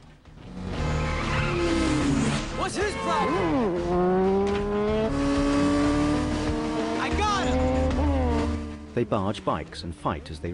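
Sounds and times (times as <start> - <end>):
oncoming swerving car engine rushing: 0.2 - 10.5
car tires skidding and squealing: 0.4 - 8.8
speech: 9.0 - 10.5.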